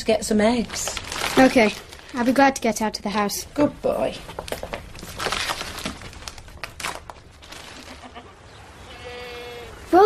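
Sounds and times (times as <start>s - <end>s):
speech: 0.0s - 4.5s
rustling crinkling noise: 0.1s - 8.4s
goats bleating at a farm: 7.8s - 9.9s.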